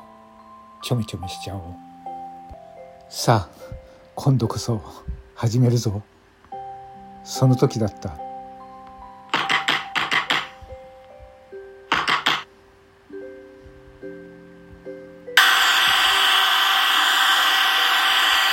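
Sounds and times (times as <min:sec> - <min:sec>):
soft sustained music tones: 0:00.0 - 0:17.3
speech: 0:00.8 - 0:01.9, 0:03.1 - 0:06.1, 0:07.2 - 0:08.2
electric drill whirring while trying to open a door: 0:15.4 - 0:18.5.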